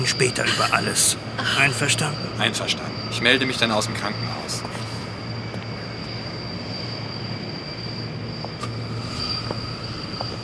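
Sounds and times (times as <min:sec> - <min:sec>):
speech: 0:00.0 - 0:04.9
transport aircraft engine drone while coming in to land: 0:00.0 - 0:10.4.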